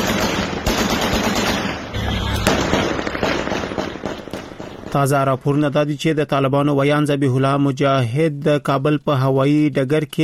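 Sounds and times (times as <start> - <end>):
celebratory gunfire in Kabul at night: 0.0 - 5.4
heavy bangs: 0.0 - 5.9
fireworks bursting in Kabul at night: 1.9 - 5.6
speech: 5.0 - 10.2.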